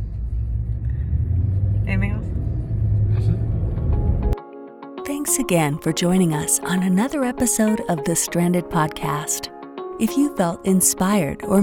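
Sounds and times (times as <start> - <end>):
low road rumble inside a moving car: 0.0 - 3.8
speech: 1.9 - 2.4, 5.2 - 11.6.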